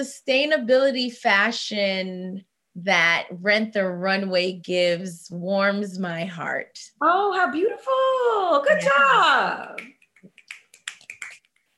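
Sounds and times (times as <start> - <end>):
speech: 0.0 - 10.0
finger snaps: 9.8 - 11.7.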